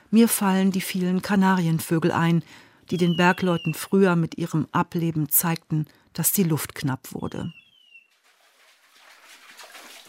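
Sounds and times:
speech: 0.1 - 7.6
water splashing at a dam wall inside a mine: 8.1 - 10.0.

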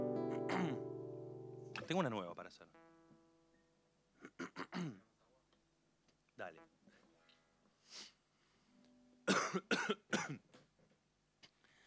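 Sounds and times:
person with a winter cold coughing: 0.3 - 0.9, 4.2 - 5.0, 9.3 - 10.4
speech: 1.9 - 2.8, 4.8 - 5.1, 6.4 - 6.8, 9.5 - 10.4.

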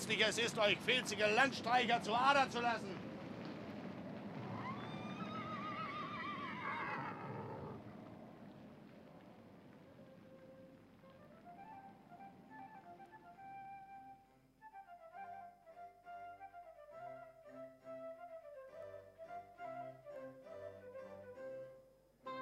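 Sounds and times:
speech: 0.1 - 3.1
horses from a string of horses on the road neighing: 4.4 - 7.9.

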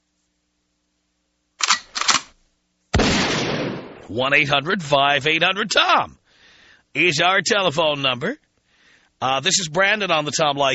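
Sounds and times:
double gunshot sound effect: 3.0 - 4.1
speech: 4.1 - 6.2, 6.9 - 8.4, 9.2 - 10.7.

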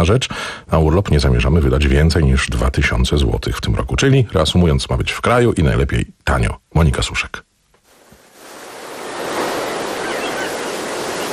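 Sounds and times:
speech: 0.0 - 7.5
sea waves breaking on a shore on the Polish coast: 7.9 - 11.3.

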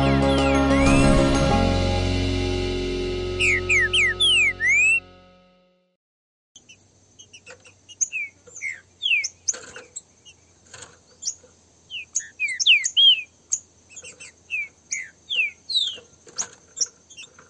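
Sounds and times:
steady high background tone: 0.1 - 5.2
green-winged saltator pair singing slurred whistles in a song dispute: 0.3 - 1.4, 3.4 - 5.0, 6.6 - 10.4, 11.2 - 16.1.

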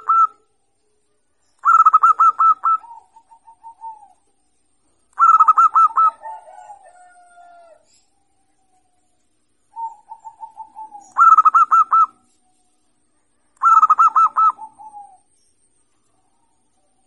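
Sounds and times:
zebra dove singing: 0.0 - 0.5, 1.6 - 4.3, 5.2 - 8.0, 9.7 - 12.4, 13.6 - 15.3.

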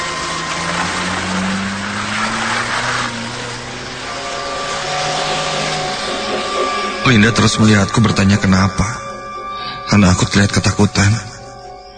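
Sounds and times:
car engine accelerating away: 0.0 - 8.8
speech: 7.1 - 9.0, 9.9 - 11.3.

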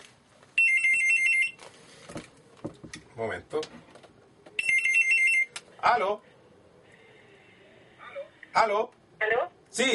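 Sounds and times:
telephone ringing with a warbling electronic trill: 0.6 - 1.6, 4.6 - 5.6
speech: 3.2 - 3.9, 5.8 - 6.3, 8.6 - 9.9.

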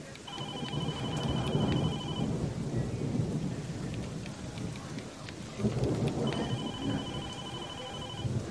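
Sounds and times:
rain falling: 0.0 - 8.5
repeating electronic beeping tone: 0.3 - 2.3, 6.3 - 8.3.

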